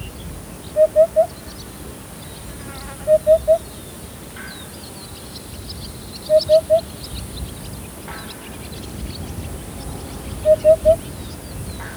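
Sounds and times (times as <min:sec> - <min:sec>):
Upupa epops calling: 0:00.0 - 0:01.5, 0:03.0 - 0:03.7, 0:06.3 - 0:07.0, 0:09.7 - 0:11.9.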